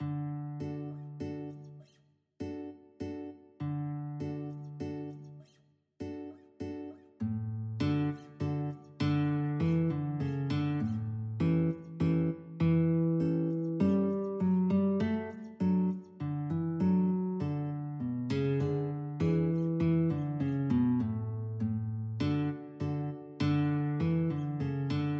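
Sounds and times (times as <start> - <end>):
guitar duet: 0.0 - 25.1.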